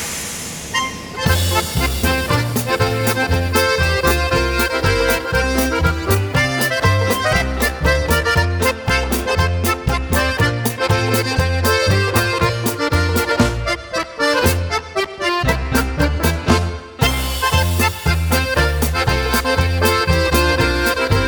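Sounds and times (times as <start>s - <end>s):
polka music: 0.7s - 21.2s.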